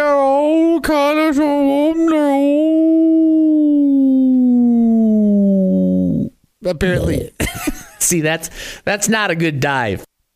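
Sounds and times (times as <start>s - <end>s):
speech: 0.8s - 2.9s, 6.7s - 10.1s
person imitating a whale call with a long moaning tone: 1.9s - 6.4s.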